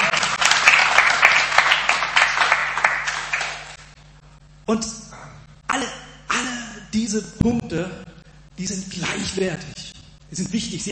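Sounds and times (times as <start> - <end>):
audience clapping: 0.0 - 3.9
speech: 4.7 - 5.0, 7.1 - 9.6, 10.3 - 10.9.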